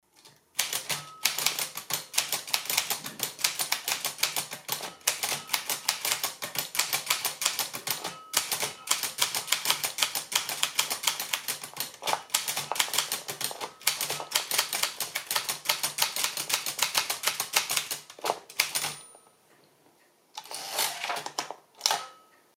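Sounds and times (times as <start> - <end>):
Optima Plana typewriter typing: 0.2 - 19.1, 20.4 - 22.2.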